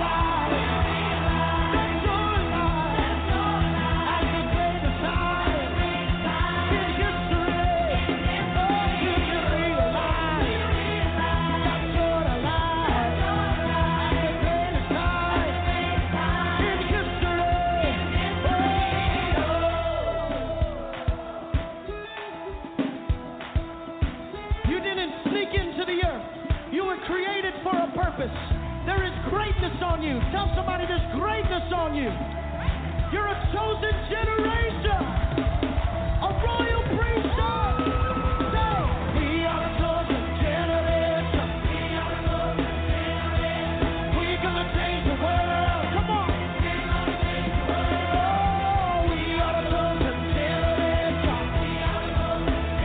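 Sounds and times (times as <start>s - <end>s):
large crowd screaming and cheering: 0.0s - 52.8s
sustained instrumental music: 0.0s - 52.8s.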